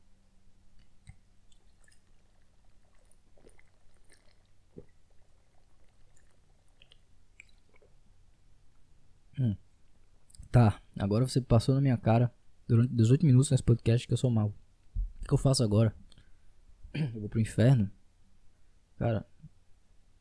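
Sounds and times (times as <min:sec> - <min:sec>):
low steady hum: 0:00.0 - 0:20.1
person drinking water: 0:00.8 - 0:08.0
speech: 0:10.5 - 0:14.6, 0:15.2 - 0:16.0, 0:16.9 - 0:18.0, 0:19.0 - 0:19.3.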